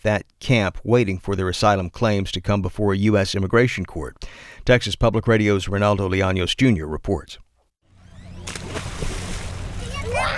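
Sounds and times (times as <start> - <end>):
speech: 0.0 - 7.4
kids splashing in river water: 8.3 - 10.3
children's voices: 9.7 - 10.3.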